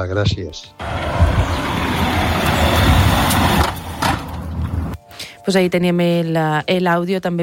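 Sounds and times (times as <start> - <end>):
speech: 0.0 - 2.2, 5.5 - 7.4
car passing by with loud broadband roar: 0.8 - 5.0.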